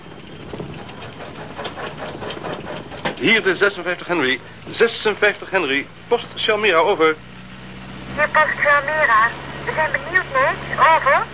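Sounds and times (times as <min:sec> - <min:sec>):
motor humming with faint rapid rattle: 0:00.0 - 0:08.1
speech: 0:03.2 - 0:07.3, 0:08.2 - 0:11.3.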